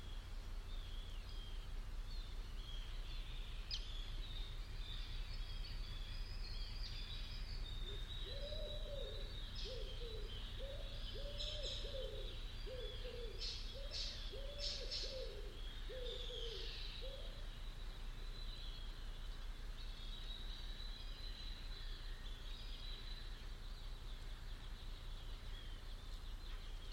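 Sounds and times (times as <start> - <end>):
other birds giving thin higher chirps: 0.0 - 26.9
bird calling with hollow hooting notes: 7.7 - 19.0.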